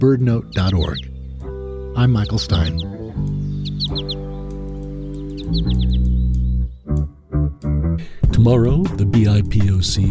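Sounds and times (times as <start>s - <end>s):
speech: 0.0s - 1.1s, 2.0s - 3.3s, 3.9s - 4.2s, 5.5s - 6.0s, 8.4s - 10.0s
male American goldfinch four-syllable flight call: 0.4s - 6.5s.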